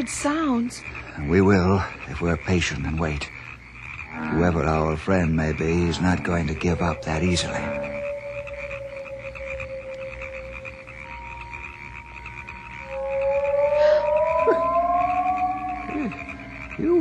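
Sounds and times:
speech: 0:00.0 - 0:03.4, 0:04.1 - 0:08.0
drawn-out pitched calls: 0:00.0 - 0:16.9
frogs croaking on an island: 0:00.0 - 0:16.9.

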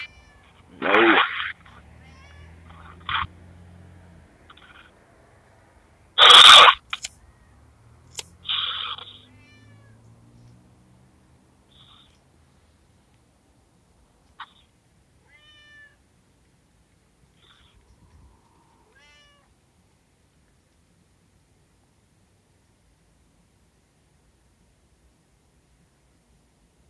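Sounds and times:
cat meowing while trying to climb a person: 0:00.0 - 0:03.3, 0:08.5 - 0:10.2, 0:15.2 - 0:16.0, 0:18.8 - 0:19.5.

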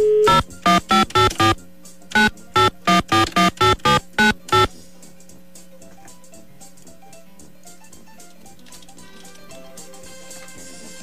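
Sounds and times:
telephone ringing tone on an outgoing call: 0:00.0 - 0:04.7.

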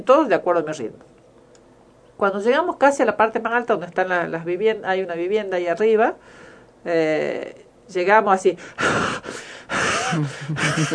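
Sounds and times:
speech: 0:00.0 - 0:01.2, 0:02.2 - 0:10.9
person imitating heavy panting on arriving near the top of a climb: 0:08.6 - 0:10.6
laughter: 0:10.1 - 0:10.9.

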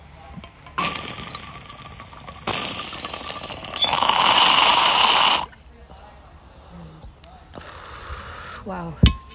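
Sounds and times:
bong water bubbling during a hit: 0:00.4 - 0:05.6.

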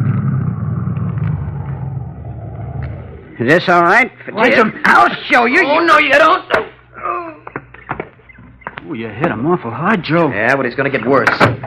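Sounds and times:
car engine rumbling as it pulls off the road and stops: 0:00.0 - 0:03.7
speech: 0:03.4 - 0:06.7, 0:08.9 - 0:11.6.

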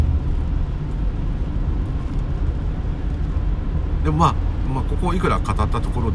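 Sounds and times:
road noise inside a moving car: 0:00.0 - 0:06.1
speech: 0:04.1 - 0:06.1.

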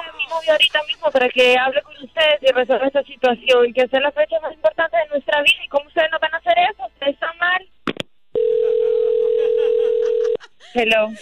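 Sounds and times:
speech: 0:00.3 - 0:07.7, 0:10.7 - 0:11.2
telephone dial tone after a dropped call: 0:08.4 - 0:10.4
laughter: 0:08.9 - 0:11.2.

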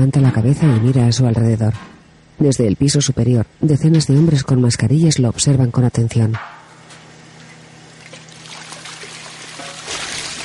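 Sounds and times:
speech: 0:00.0 - 0:06.6
low steady hum: 0:00.0 - 0:10.4
clear liquid poured into a mixer in a drug lab: 0:08.1 - 0:10.4.

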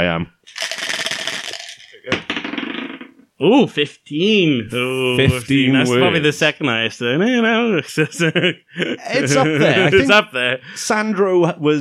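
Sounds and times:
speech: 0:00.0 - 0:00.7, 0:03.4 - 0:11.8
dice rattling on a hard surface: 0:00.5 - 0:03.1
laughter: 0:07.4 - 0:10.9.

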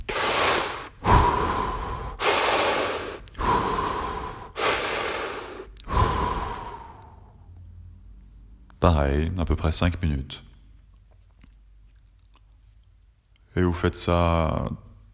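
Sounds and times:
fast heavy breathing through an open mouth as a breathing exercise: 0:00.0 - 0:07.6
speech: 0:08.8 - 0:10.5, 0:13.6 - 0:14.9.

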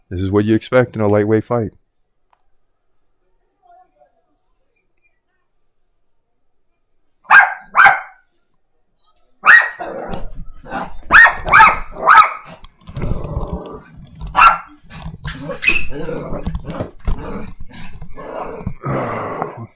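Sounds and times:
speech: 0:00.1 - 0:01.8
dog barking: 0:07.2 - 0:08.2, 0:09.4 - 0:09.9, 0:11.1 - 0:12.6, 0:14.3 - 0:14.8
dog growling: 0:09.8 - 0:11.1, 0:11.8 - 0:19.7.

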